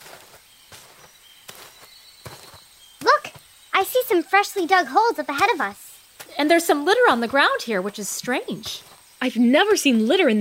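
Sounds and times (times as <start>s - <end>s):
bird-like call: 0.0s - 6.6s
footsteps crunching on forest ground: 0.0s - 9.3s
faint steady high insect or bird hum: 0.0s - 10.3s
speech: 3.9s - 5.8s, 6.4s - 10.3s.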